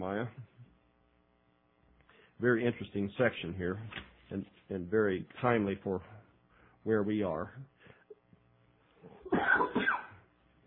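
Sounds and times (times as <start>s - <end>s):
speech: 0.0s - 0.5s, 2.4s - 6.2s, 6.8s - 7.7s, 9.3s - 10.0s
faint noise: 0.0s - 10.6s
person coughing: 9.2s - 10.2s.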